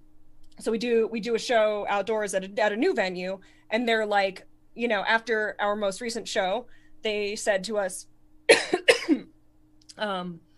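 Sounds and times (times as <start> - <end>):
speech: 0.6 - 8.0, 9.9 - 10.4
single dry cough from a person: 8.5 - 9.2.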